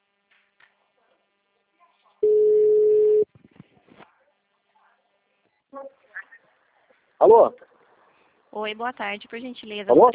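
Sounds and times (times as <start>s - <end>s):
telephone ringing tone on an outgoing call: 2.2s - 3.2s
speech: 7.2s - 7.7s, 8.6s - 10.1s.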